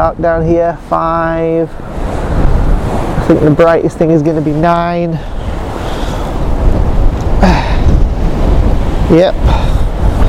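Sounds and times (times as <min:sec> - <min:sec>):
speech: 0:00.0 - 0:02.4, 0:03.3 - 0:05.4, 0:09.1 - 0:09.7
strong wind buffeting microphone: 0:00.0 - 0:10.2.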